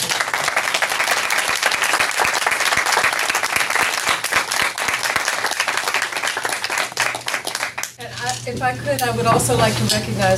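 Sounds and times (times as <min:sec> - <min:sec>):
room full of people applauding: 0:00.0 - 0:08.0
speech: 0:08.2 - 0:10.3.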